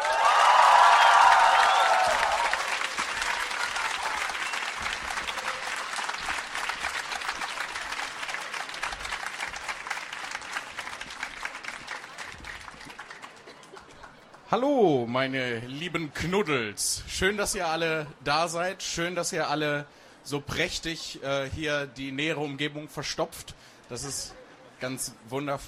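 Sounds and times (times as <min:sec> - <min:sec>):
audience cheers and whoops at a book event: 0:00.0 - 0:06.4
large audience applause in a hall at a book event: 0:00.0 - 0:14.5
speech: 0:14.6 - 0:25.6.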